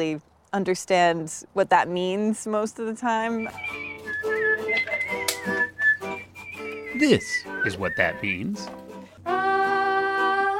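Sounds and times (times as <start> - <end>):
speech: 0.0 - 3.8, 7.0 - 8.8
person whistling a melody: 3.4 - 8.7
soft instrumental backing: 3.4 - 9.7.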